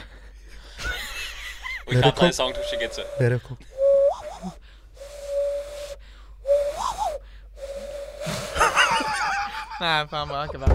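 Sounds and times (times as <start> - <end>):
laughter: 0.0 - 2.6, 8.5 - 10.5
speech: 1.9 - 3.7, 9.8 - 10.7
person whistling: 2.0 - 9.1.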